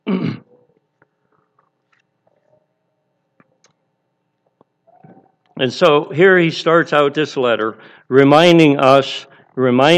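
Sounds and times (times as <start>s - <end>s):
throat clearing: 0.0s - 0.6s
speech: 5.6s - 9.9s.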